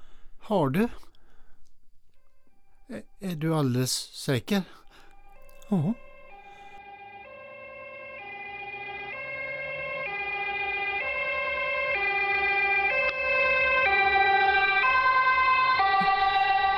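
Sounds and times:
speech: 0:00.5 - 0:01.1, 0:02.9 - 0:04.8, 0:05.7 - 0:06.0
two-tone ambulance siren: 0:04.9 - 0:16.7.

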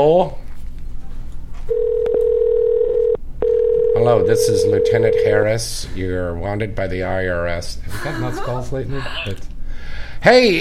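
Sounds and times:
speech: 0:00.0 - 0:00.4, 0:04.0 - 0:09.5, 0:10.2 - 0:10.6
outgoing Skype call ringing tone: 0:01.7 - 0:05.5
laughter: 0:07.9 - 0:09.4.

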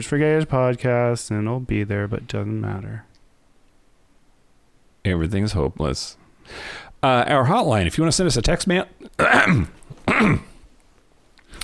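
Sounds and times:
speech: 0:00.0 - 0:03.1, 0:05.0 - 0:10.5
throat clearing: 0:09.2 - 0:10.6.

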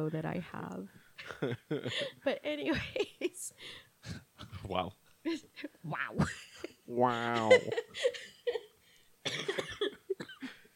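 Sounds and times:
speech: 0:00.0 - 0:08.6
person coughing: 0:09.2 - 0:10.6.

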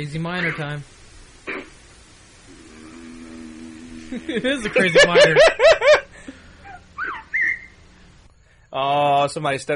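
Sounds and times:
speech: 0:00.0 - 0:01.0, 0:04.1 - 0:06.0, 0:08.7 - 0:09.7
faint low hum: 0:00.0 - 0:09.7
laughter: 0:04.1 - 0:06.1
shrill whistles purportedly from Bigfoot in the Sierra Nevada Mountains, California: 0:07.0 - 0:07.8.

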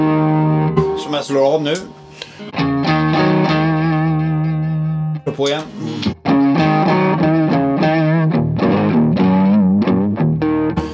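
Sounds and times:
distorted electric guitar played through an effects pedal: 0:00.0 - 0:10.9
speech: 0:01.0 - 0:02.6, 0:05.4 - 0:06.1.

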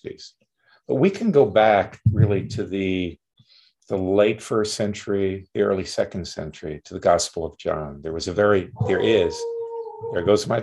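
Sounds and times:
speech: 0:00.0 - 0:03.2, 0:03.9 - 0:10.6
dog howling: 0:08.8 - 0:10.6.

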